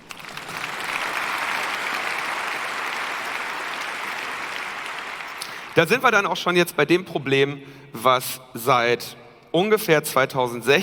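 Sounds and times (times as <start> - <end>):
audience applause for a presenter: 0.0 - 5.9
speech: 5.8 - 10.8.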